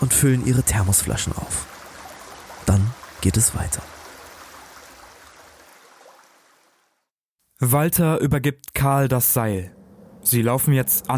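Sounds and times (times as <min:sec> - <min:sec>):
speech: 0:00.0 - 0:01.8, 0:02.6 - 0:04.0, 0:07.6 - 0:11.1
spring water bubbling from rock: 0:00.0 - 0:06.9.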